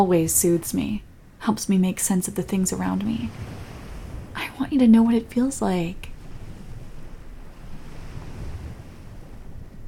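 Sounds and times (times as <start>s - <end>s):
speech: 0.0s - 3.7s, 4.6s - 6.1s
wind gusts buffeting the microphone: 0.0s - 9.8s
waves breaking in a beach cove: 2.1s - 9.8s.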